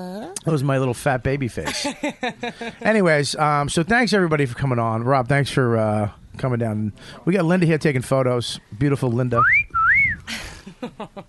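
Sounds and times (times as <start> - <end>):
speech: 0.0 - 9.6, 10.3 - 11.2
wolf whistle at a woman: 9.4 - 10.3.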